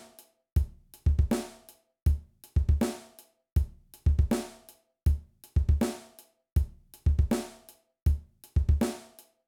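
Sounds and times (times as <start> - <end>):
kick drum technique exercise: 0.6 - 1.4, 2.1 - 2.8, 3.6 - 4.4, 5.1 - 5.8, 6.6 - 7.4, 8.1 - 8.8.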